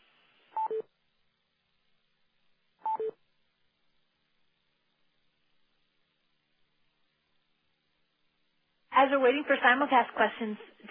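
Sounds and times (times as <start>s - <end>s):
faint hiss: 0.0s - 10.8s
telephone keypad tones as pound and six are pressed to unmute a phone: 2.9s - 3.2s
speech: 9.0s - 10.8s.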